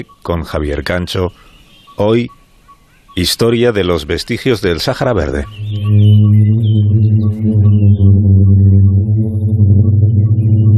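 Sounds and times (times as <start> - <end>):
speech: 0.0 - 2.4, 3.2 - 6.4
booming sand dune drone in the Sahara desert: 5.6 - 10.7.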